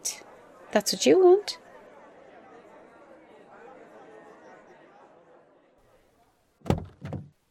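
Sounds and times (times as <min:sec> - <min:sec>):
speech: 0:00.7 - 0:01.6
car door opening with a mechanical clunk: 0:06.6 - 0:07.4
soft thud: 0:06.6 - 0:07.4.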